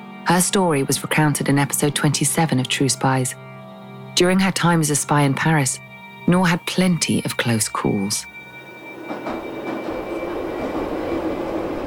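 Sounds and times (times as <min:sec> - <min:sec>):
speech: 0:00.3 - 0:03.5, 0:04.2 - 0:08.3
metro train running underground: 0:08.6 - 0:11.8.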